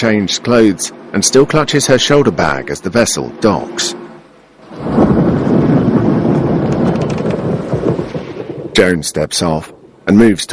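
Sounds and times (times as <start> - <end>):
speech: 0.0 - 4.0, 8.8 - 10.5
gusting wind: 0.0 - 10.5
steady hiss of rain: 4.2 - 8.8
deep rolling thunder from a nighttime thunderstorm: 4.6 - 10.1.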